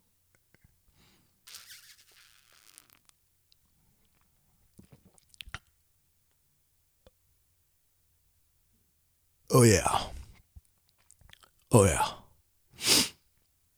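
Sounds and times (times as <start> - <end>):
sip of double IPA beer: 1.5 - 3.1, 12.8 - 13.1
speech: 9.5 - 10.1, 11.7 - 12.2
soft swallowing: 9.5 - 10.3, 11.3 - 12.2.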